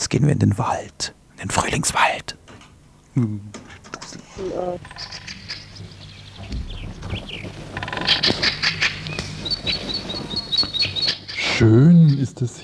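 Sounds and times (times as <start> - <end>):
speech: 0.1 - 2.4, 3.2 - 5.2, 11.6 - 12.6
birds singing in a spring forest: 4.4 - 12.6
dull thumps: 5.8 - 9.5
soft low rustling in a spring forest: 5.8 - 10.4.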